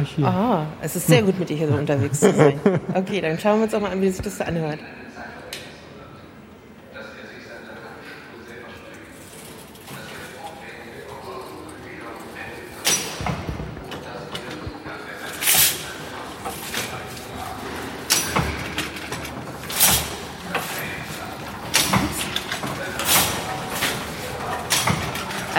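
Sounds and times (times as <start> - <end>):
speech: 0.0 - 5.3
laughter: 1.1 - 3.2
weaving loom running with needles moving: 9.2 - 25.5.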